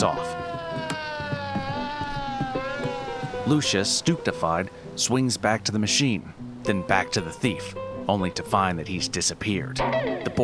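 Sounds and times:
speech: 0.0s - 0.4s, 3.5s - 10.4s
old-fashioned police wagon siren wailing: 0.0s - 4.2s
faint thumps and clatter: 0.4s - 3.4s.

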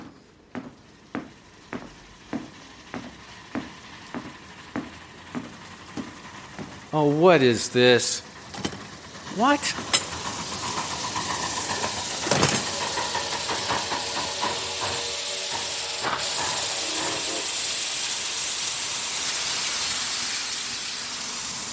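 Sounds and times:
steam train hissing: 1.3s - 21.7s
speech: 6.9s - 8.3s, 9.4s - 10.0s
sharp clanks: 9.7s - 17.3s.

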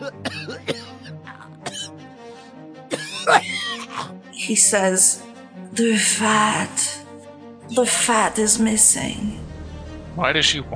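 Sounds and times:
speech: 0.0s - 0.9s, 4.5s - 7.0s, 7.7s - 9.5s, 10.2s - 10.7s
man coughing: 0.0s - 2.0s, 2.9s - 4.1s.

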